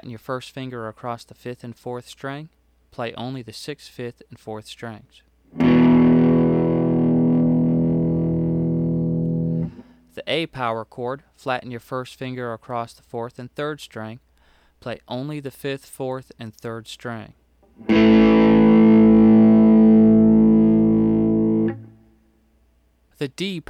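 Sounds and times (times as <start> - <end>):
open guitar power chords: 5.5 - 9.9, 17.7 - 22.2.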